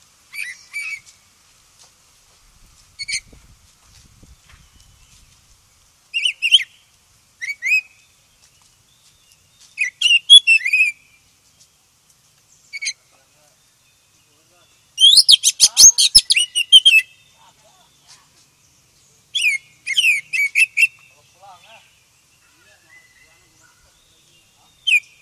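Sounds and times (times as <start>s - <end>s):
Oriental magpie-robin song: 0.3s - 1.1s, 6.1s - 6.8s, 7.4s - 11.9s, 12.6s - 25.2s.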